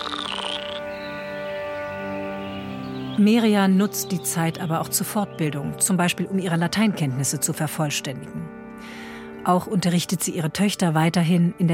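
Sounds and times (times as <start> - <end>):
frogs croaking in a dense chorus: 0.0 - 5.8
speech: 3.2 - 11.7.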